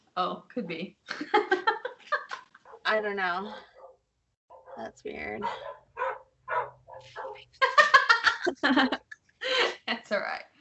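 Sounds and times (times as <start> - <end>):
speech: 0.2 - 1.6, 2.9 - 3.7, 4.8 - 5.8, 8.4 - 9.0, 10.0 - 10.5
dogs barking and growling: 2.6 - 7.5
laughter: 7.6 - 9.6.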